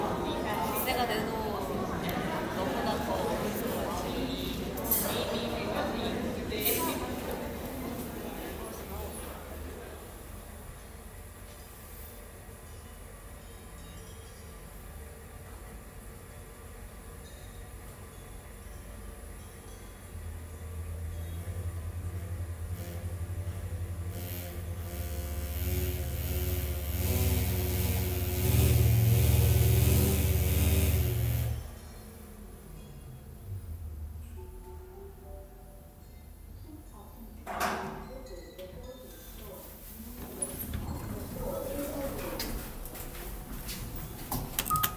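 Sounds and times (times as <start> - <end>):
voices in Seoul: 0.0 - 11.1, 37.2 - 44.9
steady hum in Seoul: 20.3 - 32.4.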